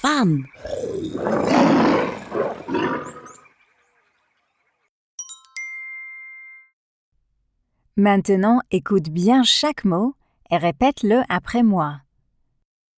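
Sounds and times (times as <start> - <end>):
speech: 0.0 - 1.8, 8.0 - 12.0
lion roaring: 0.6 - 3.4.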